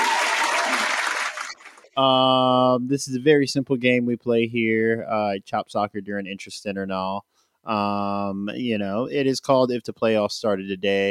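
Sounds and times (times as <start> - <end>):
audience applause: 0.0 - 2.0
speech: 2.0 - 11.0.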